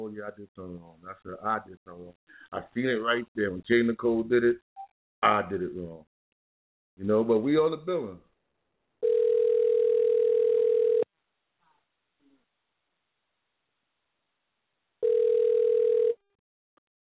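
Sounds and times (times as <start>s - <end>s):
speech: 0.1s - 6.1s, 7.0s - 8.3s
telephone ringback tone while placing a call: 9.0s - 11.1s, 15.0s - 16.2s.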